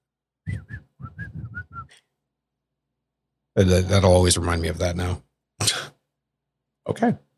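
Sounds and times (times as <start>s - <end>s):
person whistling a tune: 0.5s - 2.0s
speech: 3.6s - 5.3s, 6.9s - 7.3s.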